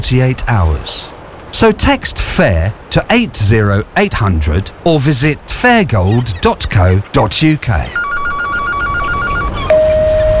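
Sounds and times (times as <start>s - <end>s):
speech: 0.0s - 8.0s
unanswered telephone ringing: 7.9s - 10.3s.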